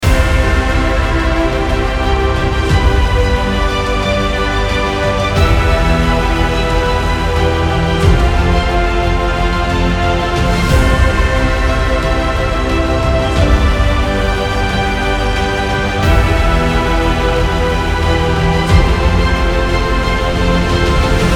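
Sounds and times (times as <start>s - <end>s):
cinematic music loop: 0.0s - 21.3s.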